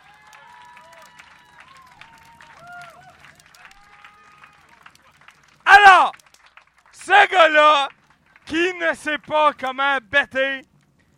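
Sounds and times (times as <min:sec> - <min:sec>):
crowd cheering and whooping: 0:00.0 - 0:04.9
crowd clapping: 0:00.0 - 0:10.5
speech: 0:07.1 - 0:10.7.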